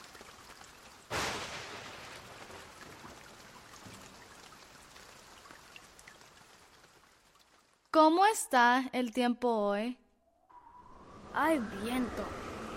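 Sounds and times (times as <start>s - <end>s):
steady rain with droplet pats and ticks: 0.0s - 8.0s, 11.2s - 12.7s
speech: 8.0s - 10.0s, 11.4s - 12.4s.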